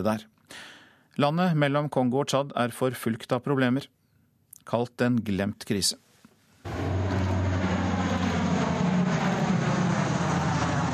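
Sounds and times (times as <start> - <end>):
speech: 0.0 - 4.0, 4.6 - 6.0
airplane engine roar passing overhead: 6.6 - 10.9.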